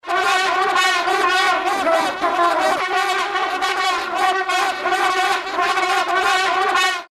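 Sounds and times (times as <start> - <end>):
noisy vuvuzela blaring: 0.0 - 7.0.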